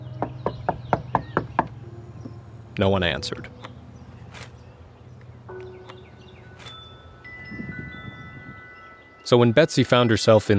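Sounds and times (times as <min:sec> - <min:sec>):
knocking on a door: 0:00.2 - 0:01.8
speech: 0:02.8 - 0:03.7, 0:09.3 - 0:10.5.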